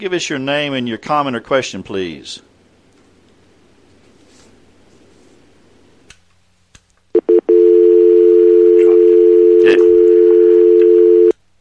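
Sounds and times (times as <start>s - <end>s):
speech: 0.0s - 2.5s
telephone dial tone after a dropped call on a call-in line: 7.2s - 11.3s.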